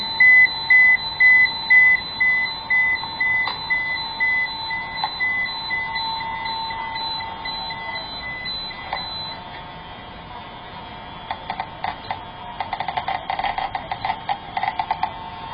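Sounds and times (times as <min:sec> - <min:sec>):
radiation detector alarm beeping while measuring radioactive mineral samples: 0:00.0 - 0:09.6, 0:11.1 - 0:15.5
radiation detector fast crackling clicks from torbernite and betafite samples: 0:11.3 - 0:15.2.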